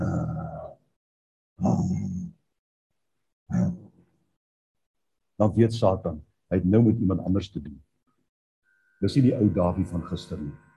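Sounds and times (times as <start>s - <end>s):
person imitating lion roars: 0.0s - 0.8s, 1.6s - 2.4s, 3.5s - 3.9s
speech: 5.4s - 7.9s, 9.0s - 10.6s.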